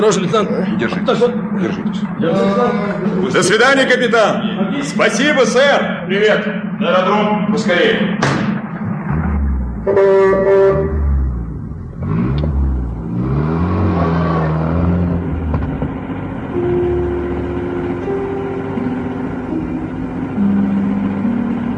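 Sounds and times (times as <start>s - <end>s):
speech: 0.0s - 8.5s, 9.8s - 11.0s
car engine revving and accelerating away: 0.0s - 21.7s
car horn honks: 9.8s - 11.3s.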